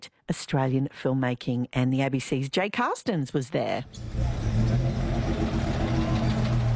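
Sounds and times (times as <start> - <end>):
speech: 0.3 - 5.0
dusty safari truck engine idling in Winton, Australia: 3.9 - 6.7.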